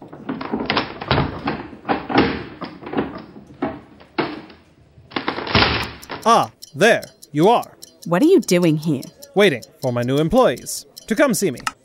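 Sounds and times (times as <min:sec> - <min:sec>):
locked office door pried open with a crowbar: 0:00.1 - 0:04.6, 0:05.2 - 0:06.2
speech: 0:06.3 - 0:11.8.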